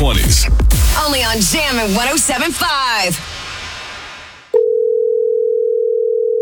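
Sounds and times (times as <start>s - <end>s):
burst of hissy noise: 0.7s - 4.5s
speech: 1.4s - 3.4s
telephone dial tone: 4.6s - 6.4s.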